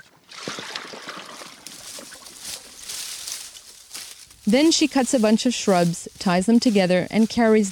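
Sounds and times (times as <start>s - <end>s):
river water sloshing and splashing from wading: 0.0s - 3.4s
speech: 4.5s - 7.7s.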